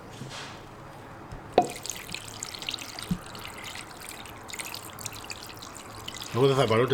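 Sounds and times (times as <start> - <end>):
small knock: 1.6 - 1.8
water pouring into a pot over chicken wings and drumsticks: 1.6 - 6.9
speech: 6.3 - 6.9.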